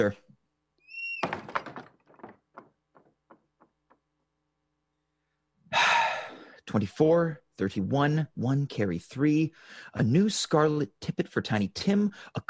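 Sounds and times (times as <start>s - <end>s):
speech: 0.0s - 0.2s, 6.7s - 12.4s
door creaking: 0.8s - 4.1s
door shutting with a solid thud: 1.2s - 3.7s
rattles and clicks: 1.2s - 4.1s
loud breathy gasps or sighs: 5.7s - 6.6s.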